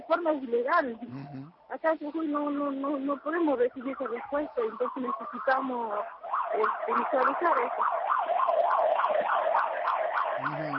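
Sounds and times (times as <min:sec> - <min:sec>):
speech: 0:00.1 - 0:08.0, 0:10.4 - 0:10.7
siren wailing in a fast rising-and-falling yelp: 0:02.1 - 0:10.7.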